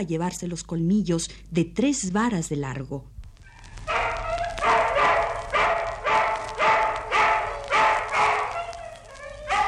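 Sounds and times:
speech: 0:00.0 - 0:03.2
hungry dogs barking: 0:03.4 - 0:09.6.

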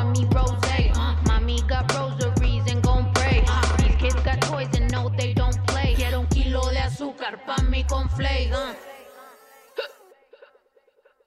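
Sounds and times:
vocal sound: 0:00.0 - 0:11.2
hiccup-like gulp: 0:09.3 - 0:10.5.

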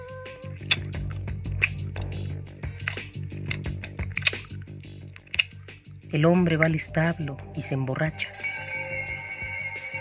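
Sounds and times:
mother masticating food with wet chewing: 0:00.4 - 0:05.8
speech: 0:06.1 - 0:08.4.

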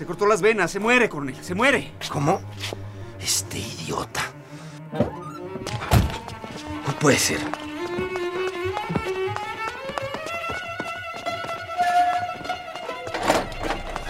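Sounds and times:
speech: 0:00.0 - 0:04.3, 0:04.9 - 0:05.9, 0:07.0 - 0:07.6
running footsteps: 0:05.6 - 0:14.0.

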